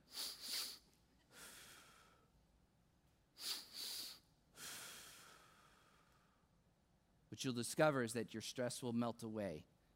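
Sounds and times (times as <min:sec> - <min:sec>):
sharp nasal sniffs: 0:00.0 - 0:00.8, 0:03.4 - 0:05.1
speech: 0:07.4 - 0:09.7.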